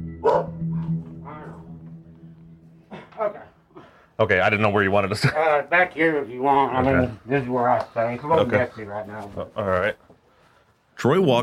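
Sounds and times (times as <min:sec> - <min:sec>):
caged bulldog barking: 0:00.2 - 0:00.8
speech: 0:04.2 - 0:10.1, 0:11.0 - 0:11.4.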